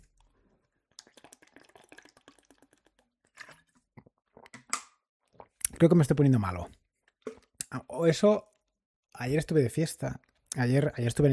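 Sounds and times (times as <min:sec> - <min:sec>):
person drinking water and swallowing: 0:00.1 - 0:05.9, 0:06.5 - 0:07.8
speech: 0:05.8 - 0:06.8, 0:08.0 - 0:08.5, 0:09.2 - 0:11.3.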